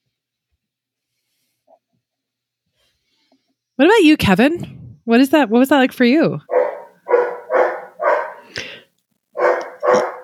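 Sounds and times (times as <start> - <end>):
speech: 3.8 - 6.5
dog barking: 6.5 - 8.6, 9.4 - 10.2.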